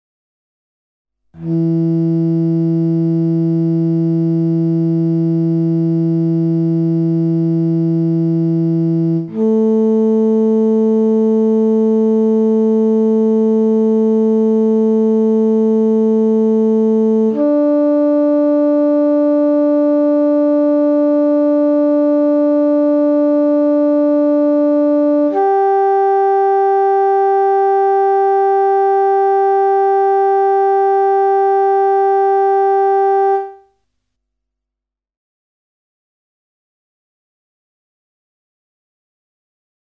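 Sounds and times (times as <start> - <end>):
bass guitar tuning notes: 1.4 - 33.6.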